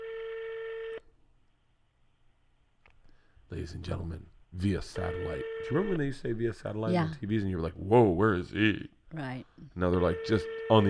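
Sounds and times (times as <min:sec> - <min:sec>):
European phone ringing tone through a phone line: 0:00.0 - 0:01.0, 0:05.0 - 0:06.0, 0:09.9 - 0:10.8
speech: 0:03.5 - 0:10.8.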